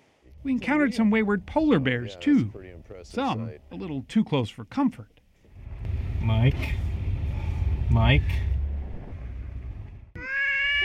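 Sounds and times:
speech: 0.4 - 5.2, 6.2 - 6.9, 7.9 - 8.5
low rushing noise: 5.5 - 10.2
cat meowing on an island off Japan: 10.2 - 10.8.

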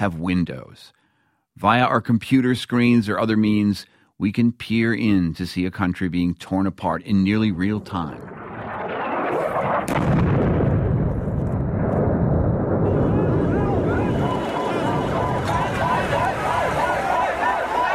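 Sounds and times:
speech: 0.0 - 1.0, 1.6 - 8.5, 9.3 - 10.4
bombing and explosions in Sana'a Yemen during war: 8.2 - 17.8
sharp crack: 8.3 - 13.3.

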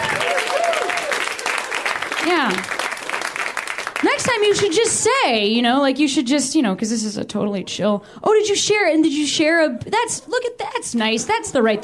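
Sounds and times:
person whooping: 0.0 - 1.3
audience applause: 0.0 - 4.6
speech: 2.3 - 2.8, 4.1 - 11.8.

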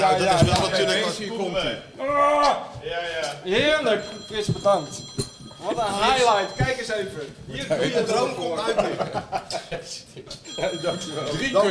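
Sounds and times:
speech: 0.0 - 11.7
mobile phone ringing with thin steady electronic tone: 3.5 - 8.4, 10.4 - 11.7
laughter: 7.5 - 11.2.

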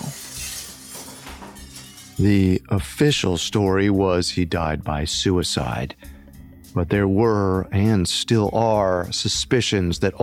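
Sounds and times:
pane of window glass shattering loudly: 0.0 - 2.4
spray of tinkling, crashing glass shards: 0.0 - 2.4
speech: 2.2 - 6.1, 6.8 - 10.2.

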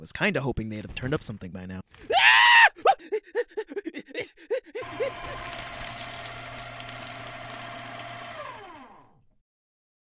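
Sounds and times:
speech: 0.0 - 3.4
strained gasps and groans: 2.0 - 5.6
loud high-pitched scream: 2.1 - 3.0
laughter: 2.7 - 5.7
machine whirring: 4.8 - 9.2.

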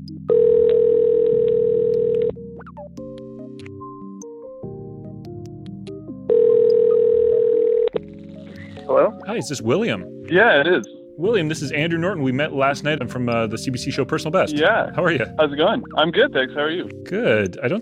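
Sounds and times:
speech: 0.0 - 1.0, 8.9 - 17.7
soft music: 0.0 - 17.7
telephone ringback tone on an outgoing phone call: 0.3 - 2.4, 6.3 - 8.0.

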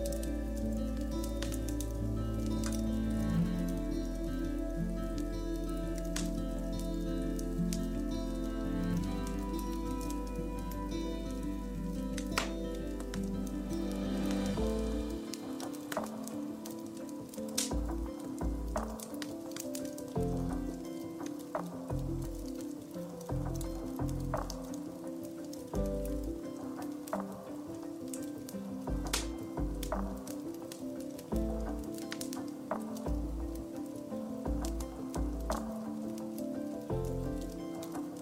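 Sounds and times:
deep low drone: 0.0 - 15.3
calm soft music of held tones: 0.0 - 38.1
fireplace fire crackling and popping: 0.0 - 38.1.

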